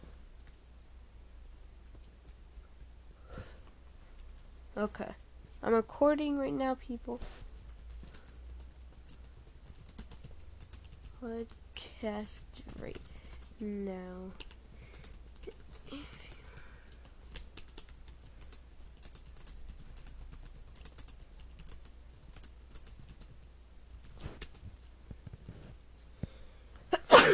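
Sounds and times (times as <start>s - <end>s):
speech: 4.8s - 7.4s, 11.2s - 14.5s
computer keyboard typing: 7.6s - 11.7s, 12.6s - 25.6s
loud sneeze: 27.0s - 27.3s.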